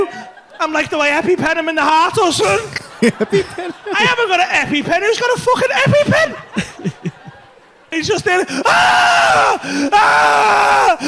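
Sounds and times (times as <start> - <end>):
laughter: 0.0 - 1.3, 2.1 - 8.7
speech: 0.6 - 6.7, 7.9 - 11.0
imitated man screaming in agony: 8.5 - 11.0.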